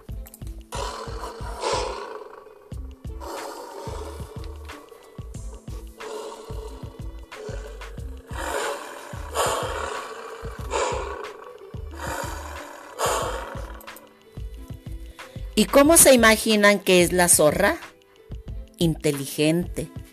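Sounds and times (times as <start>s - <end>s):
deep pulsing tones: 0.6s - 13.9s
lion roaring: 0.7s - 14.0s
speech: 15.6s - 17.9s, 18.8s - 20.0s.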